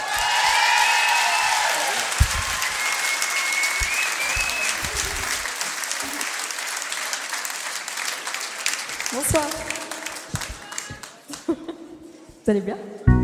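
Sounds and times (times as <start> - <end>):
cheers: 0.0 - 7.2
large audience applause welcoming a singer: 0.0 - 11.6
whistles: 2.6 - 5.3
speech: 9.3 - 9.8, 12.5 - 13.1.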